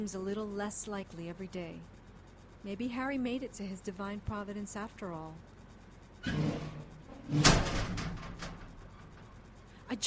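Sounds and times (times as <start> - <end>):
speech: 0.0 - 2.0, 2.6 - 5.5, 6.2 - 6.5, 7.3 - 8.1
inner office door slamming open: 6.2 - 9.0.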